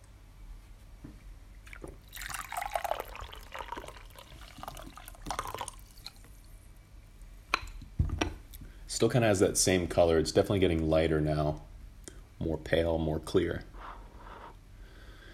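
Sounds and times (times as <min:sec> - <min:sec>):
faint tea drips: 0:01.6 - 0:06.5
roasted bancha tea pouring into a cup: 0:01.7 - 0:06.3
speech: 0:09.0 - 0:11.7, 0:12.4 - 0:13.7.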